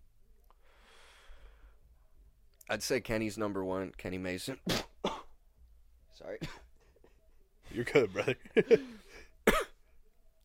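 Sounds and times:
speech: 2.7s - 5.2s, 6.2s - 6.6s, 7.8s - 9.2s
single sharp cough: 4.7s - 5.3s, 9.5s - 9.8s.

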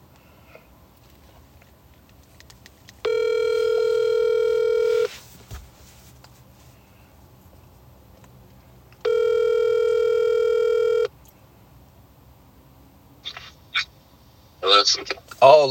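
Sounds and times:
faint hiss: 0.0s - 15.6s
phone call ringback tones: 3.0s - 5.1s, 9.0s - 11.1s
speech: 14.9s - 15.6s.

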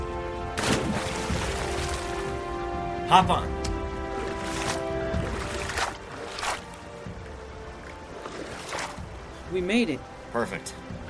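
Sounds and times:
steady wash of moving river water: 0.0s - 11.0s
canoe paddle strokes splashing on river water: 0.6s - 2.6s, 4.0s - 9.5s
speech: 3.1s - 3.6s, 9.5s - 10.9s.

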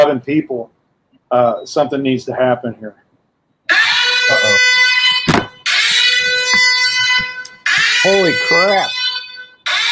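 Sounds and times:
speech: 0.1s - 3.0s, 8.0s - 9.0s
alarm buzzer signalling that mail has arrived: 3.7s - 9.9s
dull thump: 5.3s - 5.6s, 6.4s - 7.4s.

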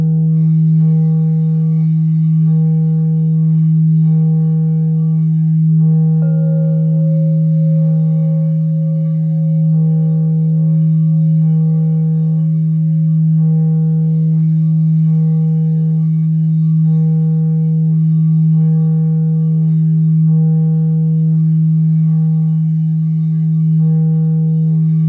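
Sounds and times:
crystal singing bowl ringing: 0.0s - 25.0s.

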